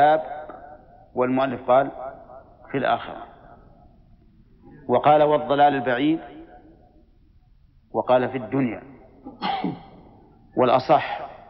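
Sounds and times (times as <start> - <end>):
speech: 0.0 - 0.4, 1.2 - 2.0, 2.7 - 3.3, 4.9 - 6.4, 7.9 - 9.8, 10.6 - 11.3
sneeze: 9.3 - 10.0.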